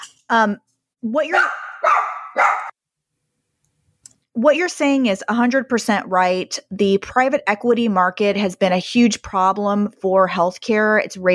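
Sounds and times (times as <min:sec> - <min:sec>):
speech: 0:00.3 - 0:02.1, 0:04.4 - 0:11.3
dogs barking: 0:01.3 - 0:02.7.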